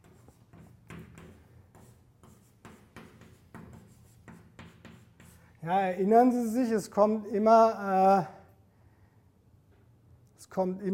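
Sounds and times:
writing on a board during a lecture: 0.0s - 5.6s
speech: 5.6s - 8.4s, 10.6s - 10.9s.

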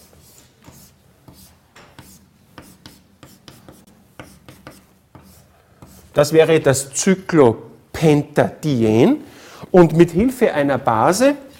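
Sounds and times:
chalk writing on a blackboard during a chemistry lecture: 0.0s - 6.3s
speech: 6.2s - 11.5s.

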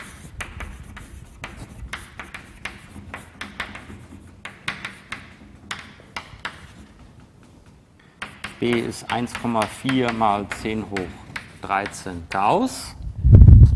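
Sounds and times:
handwriting during a physics lecture: 0.0s - 7.1s, 8.2s - 12.5s
speech: 8.6s - 13.0s.

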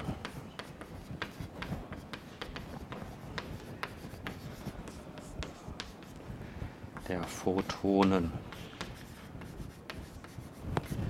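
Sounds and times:
handwriting scratching as angle brackets are added: 0.0s - 6.3s, 6.9s - 11.0s
speech: 7.1s - 8.5s.

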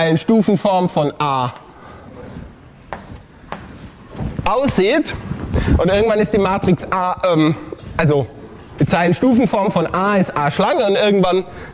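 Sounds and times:
speech: 0.0s - 1.6s, 4.5s - 11.7s
pen scratching while sketching a matrix: 1.6s - 4.4s.

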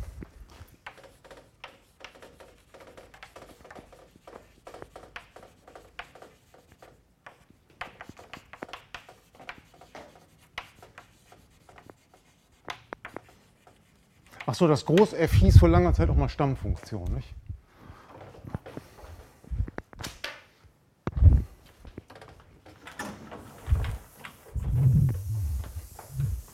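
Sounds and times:
scratchy writing strokes during a mathematics lecture: 0.0s - 15.2s, 23.7s - 26.5s
speech: 14.5s - 17.4s.

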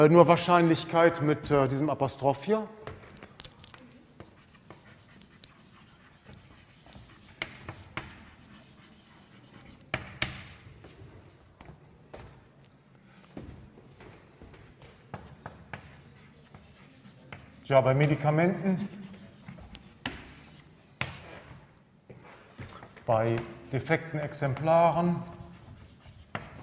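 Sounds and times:
speech: 0.0s - 2.9s, 17.7s - 19.0s, 23.1s - 25.3s
pen writing by hand on a surface: 3.7s - 12.3s, 14.0s - 17.7s, 19.0s - 21.6s, 22.2s - 26.6s.

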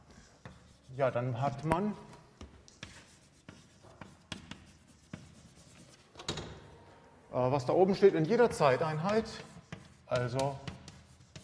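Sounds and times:
writing on a board: 0.0s - 1.8s, 2.4s - 6.1s, 8.9s - 11.4s
speech: 1.0s - 2.1s, 7.4s - 9.5s, 10.1s - 10.7s.

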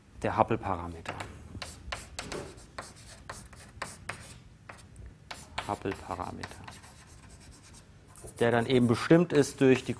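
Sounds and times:
speech: 0.2s - 1.3s, 5.7s - 6.8s, 8.3s - 9.9s
scratchy handwriting strokes writing a formula: 1.6s - 9.1s.

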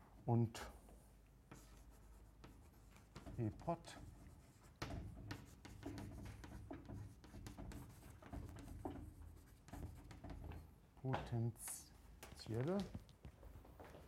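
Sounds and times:
speech: 0.2s - 0.8s, 3.4s - 4.1s, 11.0s - 11.8s, 12.5s - 13.0s
handwriting with a pen or chalk: 1.5s - 10.6s.

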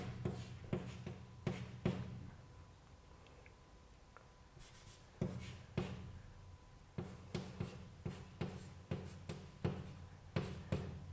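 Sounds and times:
math matrix being written out by hand: 0.0s - 2.1s, 7.0s - 11.0s.

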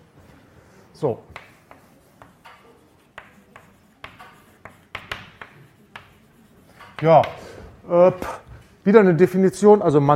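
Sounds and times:
speech: 1.0s - 1.4s, 7.0s - 10.1s
writing on a board during a math lecture: 1.3s - 7.5s.

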